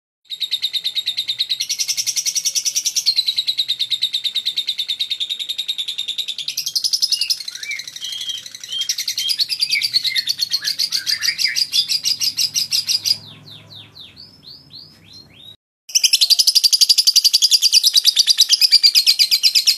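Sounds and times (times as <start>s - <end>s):
lovebird chattering song: 0.4s - 19.7s.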